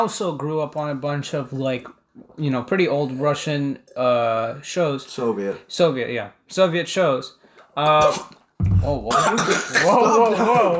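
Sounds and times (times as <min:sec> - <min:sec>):
speech: 0:00.0 - 0:10.7
person sputtering and coughing after choking on water: 0:08.0 - 0:10.7
throat clearing: 0:09.0 - 0:09.9.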